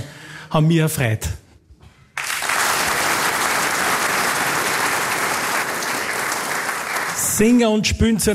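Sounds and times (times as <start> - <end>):
speech: 0.5 - 1.4, 7.4 - 8.3
audience applause for musicians on a stage: 2.2 - 7.4.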